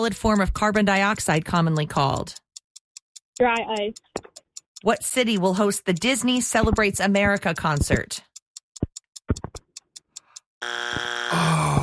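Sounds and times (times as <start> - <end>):
speech: 0.0 - 2.4, 3.4 - 4.1, 4.8 - 8.3, 10.6 - 11.6
sharp ticking clock beats counting down: 0.0 - 11.8
quiz-show time-up buzzer: 10.6 - 11.8.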